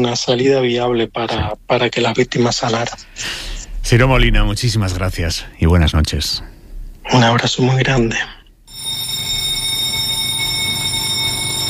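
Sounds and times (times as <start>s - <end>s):
speech: 0.0s - 6.5s, 7.1s - 9.0s
newsroom alarm bell ringing: 8.7s - 11.6s.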